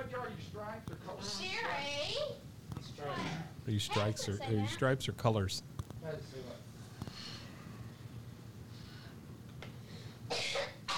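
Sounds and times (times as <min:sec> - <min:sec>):
speech: 0:00.0 - 0:06.7
child coughing: 0:10.3 - 0:10.9.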